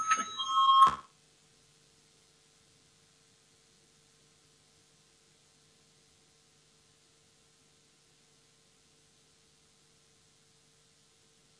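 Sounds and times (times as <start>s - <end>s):
electric voting bell in a parliament chamber: 0.0s - 1.1s.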